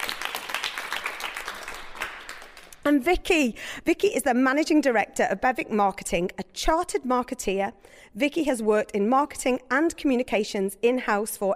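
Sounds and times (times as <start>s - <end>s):
audience applause at a regional business awards event: 0.0s - 2.8s
speech: 2.9s - 11.5s.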